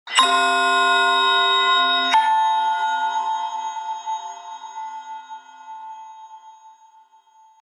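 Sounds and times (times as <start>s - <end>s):
high folding bell ringtone on a Samsung GT-I8320 phone: 0.1s - 7.6s.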